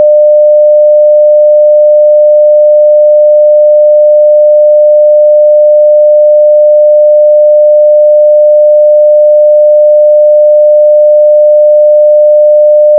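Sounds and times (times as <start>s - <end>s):
sine wave morse code tones: 0.0s - 12.9s.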